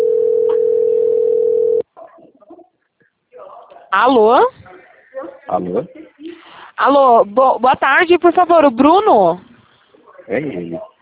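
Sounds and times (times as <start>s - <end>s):
ringing tone of an outgoing telephone call: 0.0s - 1.8s
faint scattered sounds: 1.8s - 11.0s
speech: 3.9s - 4.6s, 5.5s - 6.0s, 6.8s - 9.5s, 10.3s - 11.0s.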